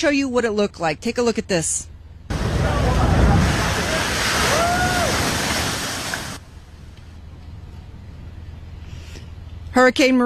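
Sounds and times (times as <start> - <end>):
speech: 0.0 - 1.9, 9.8 - 10.2
massive ocean waves driven by hurricane winds crashing ashore on the Long Beach Peninsula: 2.3 - 6.4.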